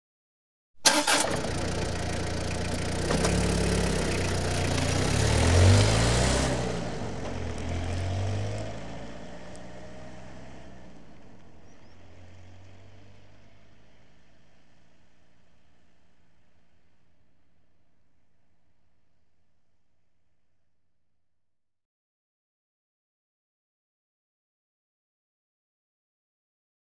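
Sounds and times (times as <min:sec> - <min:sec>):
Peugeot 1.9 L diesel car engine heard from outside: 0:00.8 - 0:16.6.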